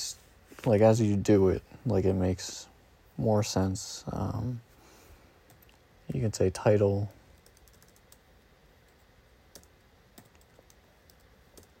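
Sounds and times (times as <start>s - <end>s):
speech: 0.6s - 4.7s, 6.1s - 7.2s
typing on a computer keyboard while writing code: 7.4s - 8.2s, 8.9s - 11.7s.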